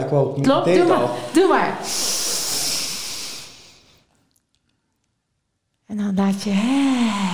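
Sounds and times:
speech: 0.1s - 2.2s, 5.9s - 7.3s
long airy deep inhalation: 1.0s - 4.1s.

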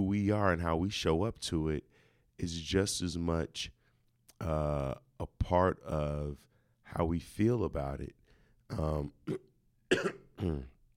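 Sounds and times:
speech: 0.2s - 3.8s, 4.4s - 10.7s
person with a cold coughing: 8.8s - 10.8s.

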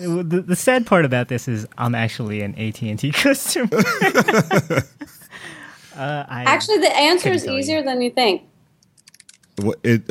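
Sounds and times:
speech: 0.0s - 8.5s, 9.6s - 10.0s
laughter: 3.6s - 5.5s
person talking loudly: 6.3s - 7.8s
faint soft computer keyboard clicks: 8.8s - 9.8s.

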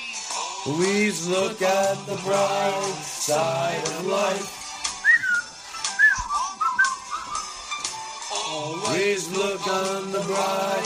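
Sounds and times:
speech: 0.6s - 4.6s, 8.7s - 10.8s
person whistling a cheerful melody: 5.0s - 7.8s.

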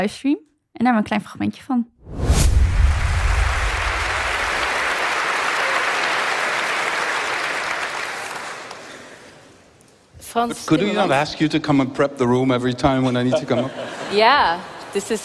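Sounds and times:
speech: 0.0s - 2.4s, 10.3s - 15.2s
large crowd cheering and applauding at a campaign event: 2.8s - 9.3s
laughter: 13.0s - 15.0s.

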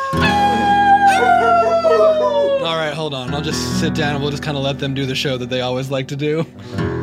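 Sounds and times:
wolves howling in a loud overlapping chorus: 0.1s - 3.1s
speech: 2.0s - 6.9s.

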